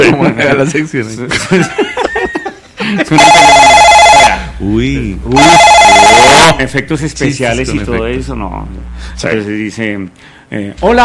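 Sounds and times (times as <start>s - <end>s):
speech: 0.3s - 1.9s, 3.0s - 3.6s, 4.7s - 5.7s, 6.5s - 11.0s
people chuckling: 1.3s - 3.2s
telephone ringing: 3.1s - 4.5s, 5.4s - 6.6s.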